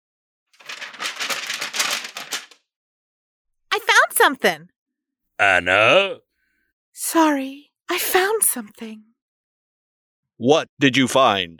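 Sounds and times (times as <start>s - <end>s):
papers rustling and crinkling: 0.6s - 2.6s
speech: 4.2s - 4.8s, 5.4s - 6.2s, 7.0s - 9.1s, 10.4s - 11.5s.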